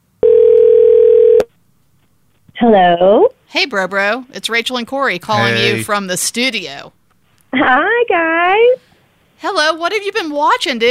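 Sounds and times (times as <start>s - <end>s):
telephone dial tone: 0.2s - 1.4s
speech: 2.6s - 7.0s, 7.6s - 10.8s.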